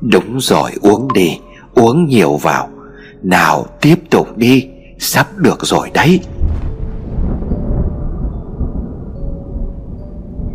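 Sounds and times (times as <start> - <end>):
speech: 0.0 - 6.4
deep heavy thunder crash with a sharp crack: 6.3 - 10.5
rain hissing: 6.3 - 10.5.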